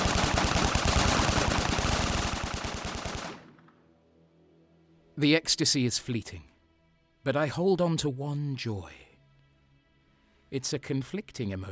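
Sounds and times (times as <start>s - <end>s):
rapid sustained automatic gunfire: 0.0s - 3.7s
speech: 5.2s - 6.5s, 7.2s - 9.0s, 10.5s - 11.7s.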